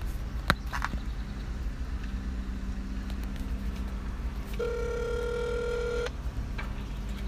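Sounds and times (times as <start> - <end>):
low continuous rumble: 0.0 - 7.2
telephone hold line tone beep: 4.6 - 6.1.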